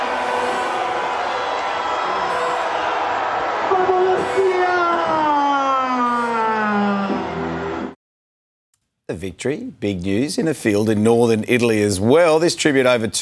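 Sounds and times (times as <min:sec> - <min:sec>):
crowd chanting: 0:00.0 - 0:05.3
dense outdoor crowd cheering at an open-top bus parade: 0:00.0 - 0:08.0
speech: 0:09.1 - 0:13.1.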